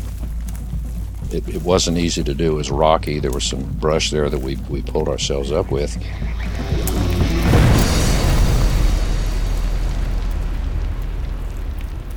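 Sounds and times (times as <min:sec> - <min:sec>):
speech: 0:01.3 - 0:07.0
dynamite and powder blast echoing through a canyon: 0:06.3 - 0:12.1.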